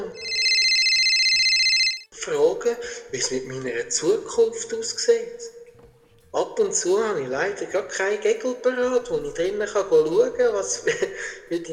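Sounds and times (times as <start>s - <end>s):
telephone ringing with a rapidly trilling tone: 0.0s - 2.1s
speech: 2.3s - 5.6s, 6.3s - 11.7s
laughter: 10.7s - 11.4s.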